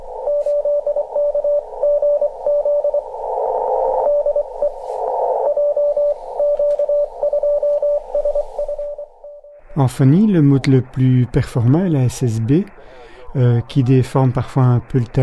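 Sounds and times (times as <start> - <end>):
crackly radio static: 0.0 - 15.2
Morse code beeps received over radio: 0.2 - 3.2, 3.9 - 10.7
speech: 9.8 - 15.2.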